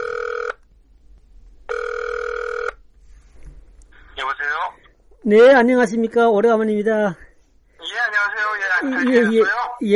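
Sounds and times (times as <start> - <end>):
outgoing phone ringing tone: 0.0 - 0.6, 1.7 - 2.8
speech: 4.7 - 7.2, 8.8 - 9.9.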